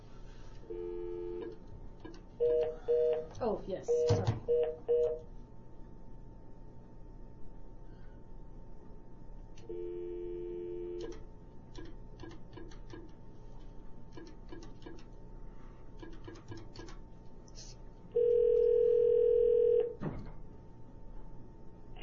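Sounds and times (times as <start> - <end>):
phone line dial tone hum: 0.7 - 1.6, 2.4 - 3.3, 3.9 - 5.3, 9.6 - 11.2, 18.2 - 20.0
speech: 2.4 - 5.3.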